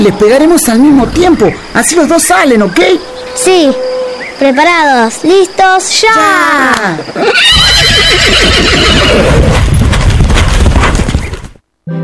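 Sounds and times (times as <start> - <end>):
speech: 0.0 - 9.7
horse whinnying: 7.2 - 9.7
horses' hooves pounding across a field: 7.2 - 11.7.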